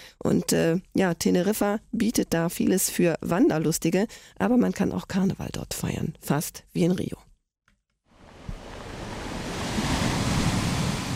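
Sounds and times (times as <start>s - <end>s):
speech: 0.2s - 7.3s
ocean waves crashing against rocky cliffs: 8.2s - 11.1s.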